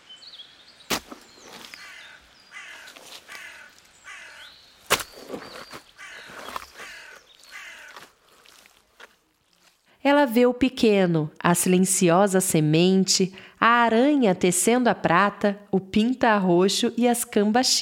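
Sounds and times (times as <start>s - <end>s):
crows cawing in a raucous overlapping chorus: 1.6s - 4.6s, 5.8s - 8.7s
speech: 10.1s - 17.8s.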